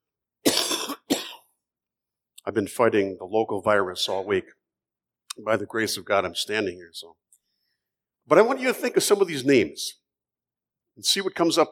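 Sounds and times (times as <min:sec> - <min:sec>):
person coughing forcefully: 0:00.4 - 0:01.6
speech: 0:02.4 - 0:04.6, 0:05.4 - 0:07.3, 0:08.3 - 0:10.0, 0:11.0 - 0:11.7.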